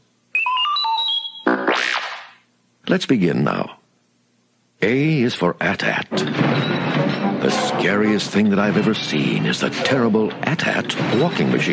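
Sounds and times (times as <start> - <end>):
robotic electronic droid beeps and chirps as a read-along page-turn cue: 0.4 - 2.3
speech: 2.9 - 3.8, 4.8 - 11.7.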